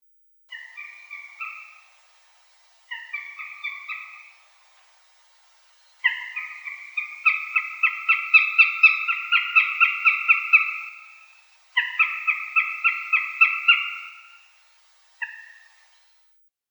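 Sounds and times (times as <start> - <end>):
Accipiter gentilis: 0.5 - 16.1.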